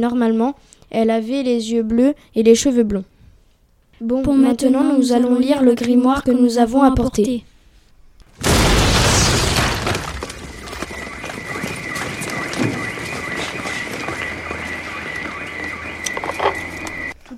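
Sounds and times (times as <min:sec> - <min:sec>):
speech: 0:00.0 - 0:03.1, 0:04.0 - 0:07.5
loud explosion: 0:08.4 - 0:10.9
clattering noise: 0:08.5 - 0:17.0
steady high-pitched alarm tone: 0:09.8 - 0:17.2.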